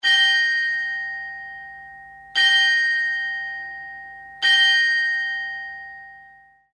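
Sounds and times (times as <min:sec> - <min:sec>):
carillon bells ringing: 0:00.0 - 0:06.7.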